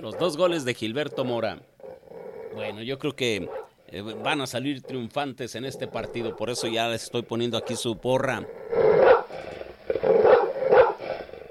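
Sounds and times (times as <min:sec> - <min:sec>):
speech: 0:00.0 - 0:01.7, 0:02.6 - 0:09.0
dog barking: 0:03.4 - 0:05.0, 0:05.8 - 0:08.0, 0:08.9 - 0:09.4, 0:10.1 - 0:11.0.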